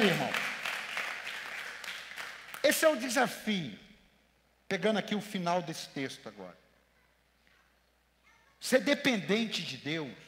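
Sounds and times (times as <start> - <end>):
audience applauding: 0.0 - 2.7
speech: 2.8 - 3.8, 4.7 - 6.6, 8.6 - 10.2.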